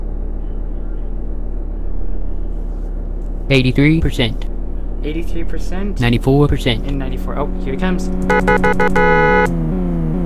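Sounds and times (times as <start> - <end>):
Quattro racing car engines droning on a track in a racing video game: 0.0 - 10.2
speech: 3.5 - 9.7.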